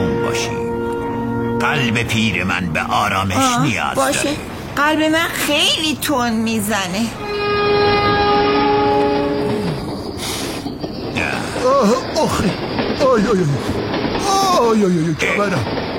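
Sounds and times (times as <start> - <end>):
passing train horn: 0.0 - 4.2, 7.2 - 10.0
continuous rumbling rail noise of a passing train: 0.0 - 15.9
speech: 1.6 - 7.4, 11.8 - 15.9.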